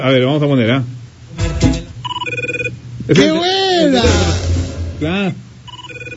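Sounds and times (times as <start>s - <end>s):
speech: 0.0s - 1.6s, 3.1s - 4.4s, 5.0s - 5.4s
low hum: 0.0s - 6.1s
electronic office phone ringtone with warbling two-tone trill: 2.0s - 2.8s, 5.7s - 6.1s.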